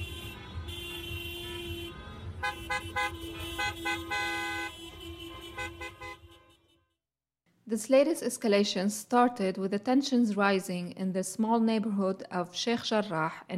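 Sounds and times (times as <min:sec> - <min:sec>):
steady traffic rumble: 0:00.0 - 0:06.6
car horns honking during a car parade: 0:00.0 - 0:07.0
speech: 0:02.5 - 0:04.4, 0:07.7 - 0:13.5.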